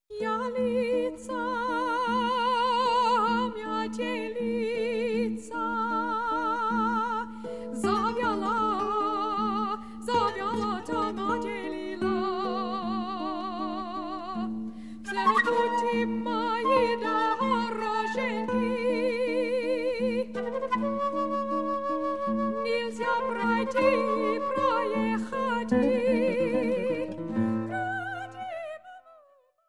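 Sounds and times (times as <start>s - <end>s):
voice singing songs: 0.1s - 21.3s, 22.6s - 29.1s
harp: 0.2s - 28.8s
flute: 15.1s - 28.6s.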